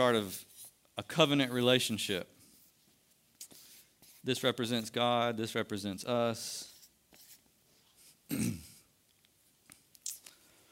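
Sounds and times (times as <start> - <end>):
speech: 0.0 - 2.4, 4.2 - 6.7, 8.3 - 8.7
person clearing throat: 8.3 - 8.9.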